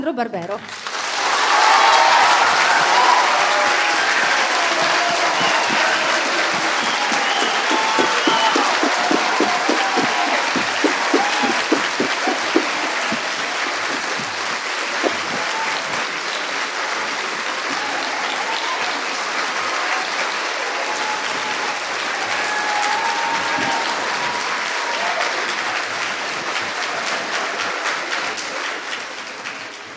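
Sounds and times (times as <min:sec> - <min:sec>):
speech: 0:00.0 - 0:00.9
large audience applauding: 0:00.6 - 0:29.9.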